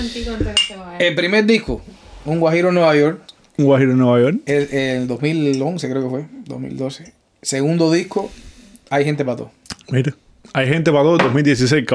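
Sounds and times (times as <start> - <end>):
speech: 0.0 - 11.9
glasses clinking in a toast: 0.4 - 0.8.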